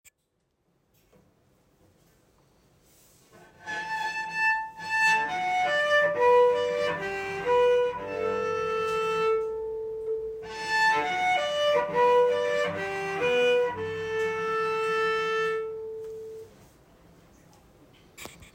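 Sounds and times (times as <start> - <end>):
cello playing in soft high position: 3.4 - 16.5.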